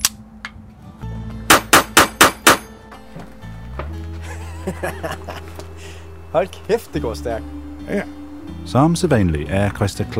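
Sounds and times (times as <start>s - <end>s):
pistol shots at a shooting range: 1.5s - 2.7s
laughter: 4.2s - 5.9s
speech: 4.7s - 5.5s, 6.3s - 10.1s.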